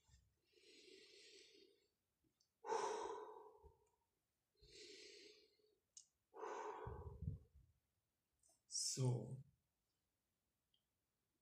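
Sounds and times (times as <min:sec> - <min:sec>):
slow deep breath cycles with airy inhales and sighing exhales: 0:00.5 - 0:01.9, 0:02.6 - 0:04.0, 0:04.6 - 0:07.6
speech: 0:09.0 - 0:09.5.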